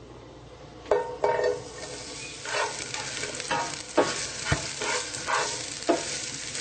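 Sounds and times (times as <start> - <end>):
onions sizzling in oil in a pan: 1.2 - 6.6
stirring scrapes in a pan: 1.8 - 6.6.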